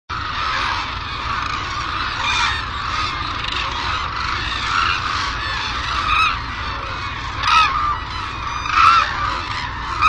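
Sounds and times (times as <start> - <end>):
group of white-naped cranes honking and trumpeting: 0.1 - 10.0.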